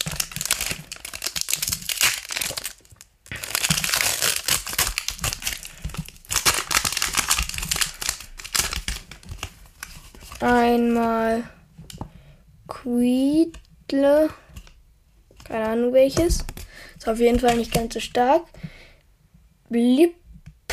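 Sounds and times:
plastic wrapper of trading card booster pack crinkling while torn open: 0.0s - 11.0s, 17.1s - 18.1s
speech: 10.4s - 11.6s, 12.8s - 14.4s, 15.6s - 18.6s, 19.7s - 20.2s.

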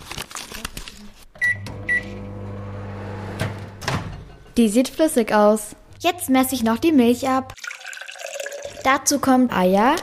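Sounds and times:
microwave oven beeps: 1.4s - 2.7s
microwave oven humming while melting margarine: 1.4s - 4.0s
speech: 4.6s - 7.6s, 8.8s - 10.0s.

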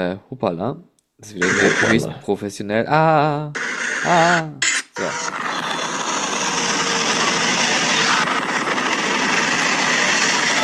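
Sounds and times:
speech: 0.0s - 5.5s
helicopter noise: 1.4s - 2.2s, 3.6s - 10.6s.

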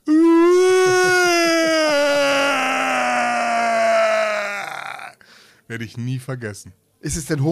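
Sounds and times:
person imitating a camel's groaning scream: 0.0s - 5.2s
speech: 5.8s - 7.5s.

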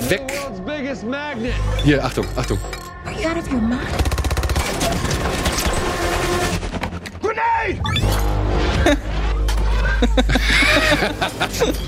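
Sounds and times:
speech: 0.1s - 4.2s, 7.6s - 9.2s, 10.0s - 11.8s
action-movie barrage of gunshots: 3.8s - 6.6s
rapid burst of machine-gun fire in film: 3.9s - 6.6s
laughter: 8.8s - 11.8s.

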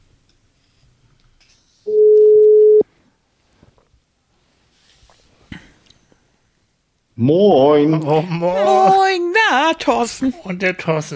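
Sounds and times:
outgoing telephone call ringing tone: 1.9s - 2.8s
speech: 7.2s - 11.1s.

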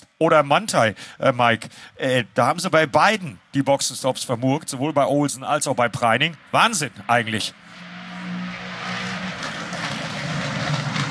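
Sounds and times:
speech: 0.2s - 7.9s
GT3 race cars driving past: 5.8s - 11.0s.

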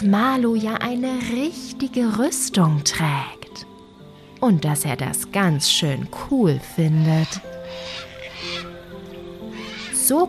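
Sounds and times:
speech: 0.0s - 3.7s, 4.4s - 8.1s, 10.1s - 10.2s
steady musical background: 0.0s - 10.2s
cockatoo calling with harsh screechy squawks: 6.6s - 10.2s.

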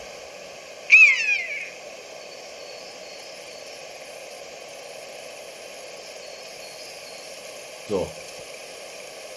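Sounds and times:
faint steady hiss: 0.0s - 9.3s
drawn-out bird call sliding downward: 0.9s - 1.8s
speech: 7.9s - 8.2s.

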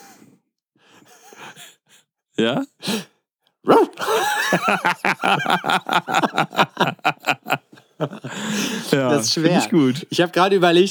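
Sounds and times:
speech: 2.4s - 7.0s, 8.4s - 10.8s
person imitating a dog's bark as a dare: 3.7s - 4.1s
person laughing rapidly: 3.9s - 10.2s.

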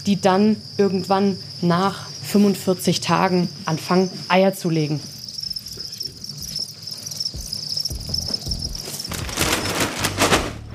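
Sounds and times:
speech: 0.0s - 5.1s
dense chorus of crickets chirping: 0.0s - 10.2s.

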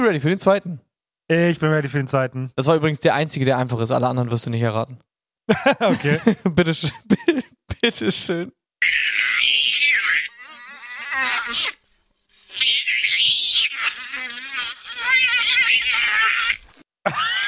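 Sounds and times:
speech: 0.0s - 9.0s, 17.0s - 17.4s
laughter: 5.5s - 8.4s
cat wailing during a fight with a mosquito: 8.8s - 11.8s, 12.6s - 17.4s
mosquito whining during a fight with a cat: 8.8s - 16.6s.

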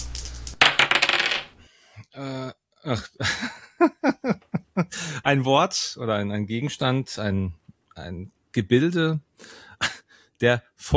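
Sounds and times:
dice clattering across a hard surface: 0.0s - 1.6s
speech: 2.2s - 4.0s, 5.3s - 10.9s.

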